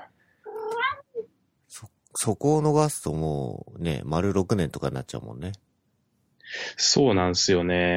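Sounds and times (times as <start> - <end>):
cat yowling meow: 0.5 - 1.3
speech: 1.8 - 5.7, 6.5 - 7.9.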